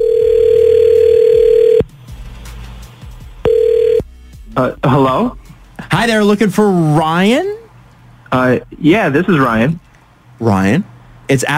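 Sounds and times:
telephone ringback tone while placing a call: 0:00.0 - 0:01.8, 0:03.5 - 0:04.0
speech: 0:04.6 - 0:07.5, 0:08.3 - 0:11.5.

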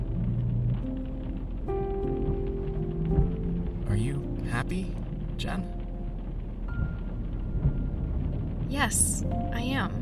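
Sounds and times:
steady rain heard from inside a car stuck in a traffic jam: 0:00.0 - 0:10.0
speech: 0:04.6 - 0:05.8, 0:08.8 - 0:10.0.

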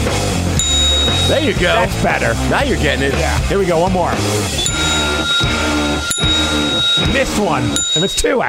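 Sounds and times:
hand bell ringing: 0:00.6 - 0:01.9, 0:04.6 - 0:08.4
speech: 0:01.3 - 0:04.7, 0:06.1 - 0:08.4.

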